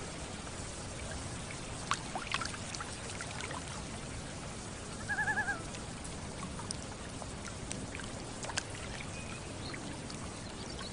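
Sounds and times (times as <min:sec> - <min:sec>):
gentle water lapping on a lake: 0:00.0 - 0:10.9
loon calling on a lake: 0:05.0 - 0:05.7.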